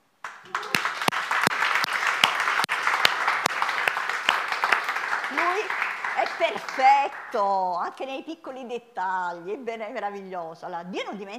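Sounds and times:
crowd applauding: 0:00.2 - 0:07.6
speech: 0:06.4 - 0:11.3.

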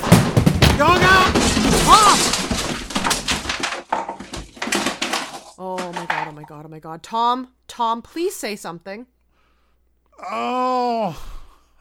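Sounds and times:
sharp thuds and scrapes: 0:00.0 - 0:06.5
thrown chair crashing and clattering: 0:00.0 - 0:06.5
people shouting and yelping loudly: 0:00.8 - 0:02.3
speech: 0:06.8 - 0:09.2, 0:10.2 - 0:11.3.

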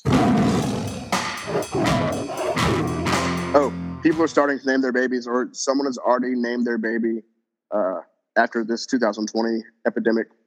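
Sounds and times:
tiger roaring with rumbling growl: 0:00.0 - 0:03.8
speech: 0:03.6 - 0:10.4.

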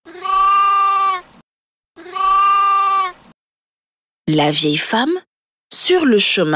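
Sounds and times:
frightened sheep bleating loudly: 0:00.0 - 0:01.3, 0:02.0 - 0:03.2
speech: 0:04.3 - 0:06.5.

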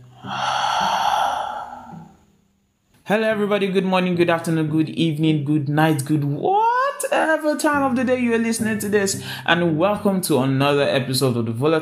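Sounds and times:
deep breath in and out: 0:00.0 - 0:02.3
speech: 0:00.2 - 0:00.6, 0:03.1 - 0:11.7.

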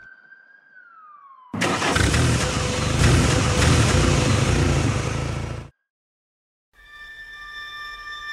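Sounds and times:
ambulance siren wailing: 0:00.0 - 0:02.7
ambulance engine roaring as it pulls away: 0:01.6 - 0:05.7.

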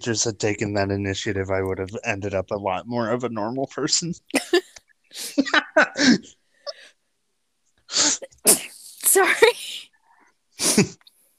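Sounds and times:
speech: 0:00.0 - 0:06.3, 0:10.8 - 0:11.0
person sneezing: 0:07.9 - 0:08.8, 0:10.6 - 0:11.0.

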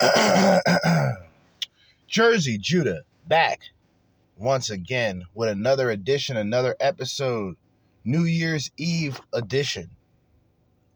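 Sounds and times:
loud raspy throat clearing: 0:00.0 - 0:01.3
speech: 0:02.1 - 0:03.8, 0:04.4 - 0:10.0.

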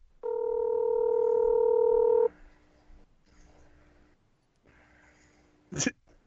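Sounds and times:
steady telephone tone during a call: 0:00.2 - 0:02.3.

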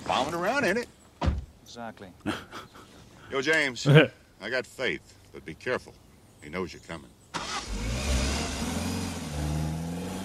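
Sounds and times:
speech: 0:00.2 - 0:01.0, 0:01.7 - 0:02.7, 0:03.3 - 0:07.9
BMW Z3 sports car engine revving: 0:07.4 - 0:10.2.

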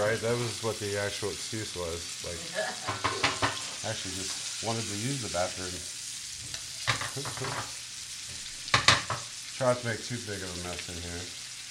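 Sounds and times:
bacon grease sizzling in a pan: 0:00.0 - 0:11.6
speech: 0:00.1 - 0:06.6, 0:07.2 - 0:07.8, 0:09.6 - 0:11.4.

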